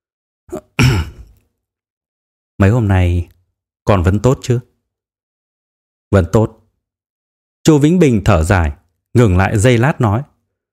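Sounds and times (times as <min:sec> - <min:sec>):
man clearing his throat: 0:00.5 - 0:01.4
speech: 0:02.6 - 0:03.3, 0:03.9 - 0:04.7, 0:06.1 - 0:06.6, 0:07.7 - 0:10.3.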